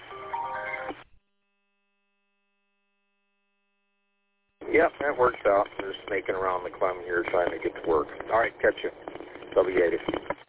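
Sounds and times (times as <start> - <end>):
work phone ringing with a short electronic melody: 0.1 - 0.9
speech: 4.7 - 10.3.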